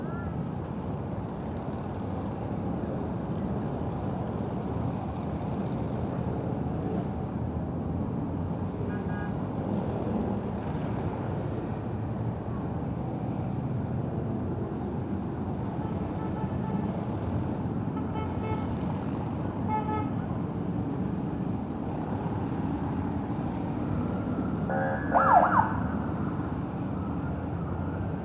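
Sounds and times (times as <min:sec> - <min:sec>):
steady low roar of city traffic heard while biking: 0:00.0 - 0:28.2
faint sirens: 0:23.5 - 0:28.2.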